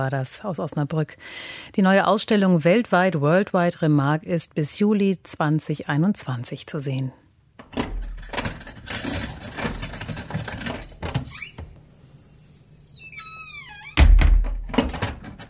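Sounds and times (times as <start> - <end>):
speech: 0.0 - 7.8
heavy metal prison door slamming shut with clank of sturdy lock: 7.7 - 8.6, 13.2 - 15.4
heavy metal prison door creaking open: 7.7 - 15.4
heavy bunch of keys jangling inside a prison: 7.9 - 11.0.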